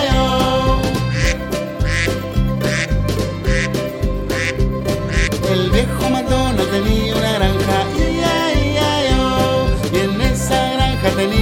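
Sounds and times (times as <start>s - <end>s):
children's farm-song instrumental music: 0.0s - 11.4s
duck quacking: 0.7s - 5.8s.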